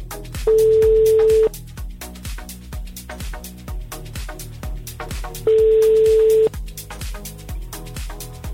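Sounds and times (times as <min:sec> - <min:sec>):
rhythmic music: 0:00.0 - 0:08.5
phone ringback tone while placing a call: 0:00.5 - 0:01.5, 0:05.5 - 0:06.5.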